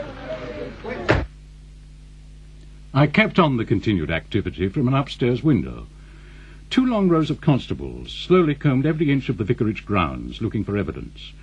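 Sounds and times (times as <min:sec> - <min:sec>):
door being shut quickly: 0:01.0 - 0:01.3
speech: 0:02.9 - 0:06.0, 0:06.7 - 0:11.4.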